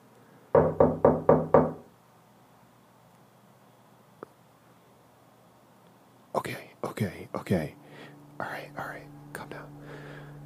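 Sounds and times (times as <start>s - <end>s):
firm knocks on a door: 0.6s - 1.9s
speech: 6.5s - 7.8s.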